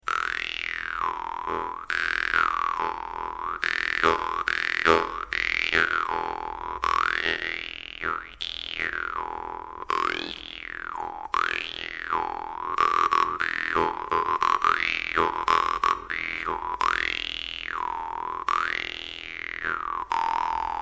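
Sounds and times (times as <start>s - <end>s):
parmupill bagpipe in E: 0.0s - 20.7s
vargan jaw harp: 0.0s - 20.7s.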